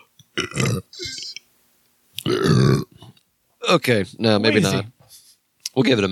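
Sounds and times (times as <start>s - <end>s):
person burping: 0.4s - 1.4s, 2.2s - 3.1s
speech: 3.7s - 5.0s, 5.8s - 6.1s.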